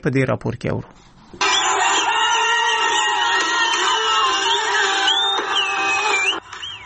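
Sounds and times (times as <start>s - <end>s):
speech: 0.0s - 1.4s
large crowd cheering and shouting celebrating a cricket victory: 1.4s - 6.6s
whistle-like cries from a celebrating crowd: 1.4s - 6.8s.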